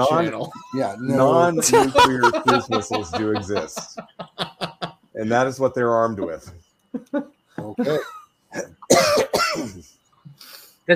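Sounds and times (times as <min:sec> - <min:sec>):
speech: 0:00.0 - 0:04.2, 0:05.2 - 0:08.7
laughter: 0:00.0 - 0:05.0, 0:07.0 - 0:08.2
person coughing: 0:07.8 - 0:09.9.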